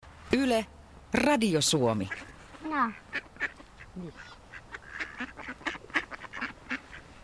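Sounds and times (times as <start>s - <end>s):
speech: 0.4s - 3.3s, 4.0s - 4.4s
tame ducks quacking: 1.9s - 7.2s.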